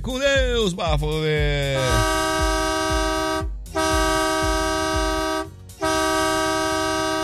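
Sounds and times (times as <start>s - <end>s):
speech: 0.0s - 2.3s
rumbling truck engine: 0.0s - 7.2s
truck air horns blaring: 1.7s - 7.2s.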